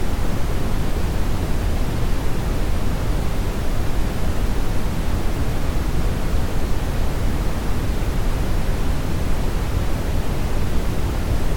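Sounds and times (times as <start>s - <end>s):
steady brown noise hiss with deep low rumble: 0.0s - 11.5s.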